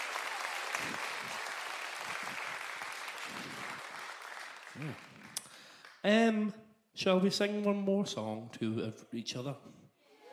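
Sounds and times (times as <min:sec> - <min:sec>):
audience applauding: 0:00.0 - 0:06.0
speech: 0:04.8 - 0:05.2, 0:06.0 - 0:09.8.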